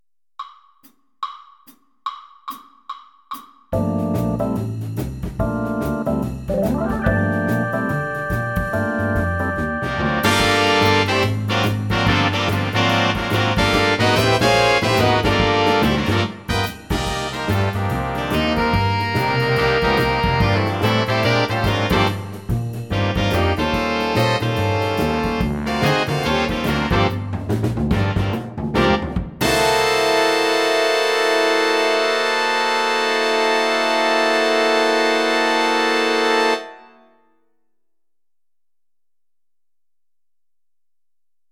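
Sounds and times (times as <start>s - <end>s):
jazz shuffle backing track for lead trumpet: 3.7s - 36.6s.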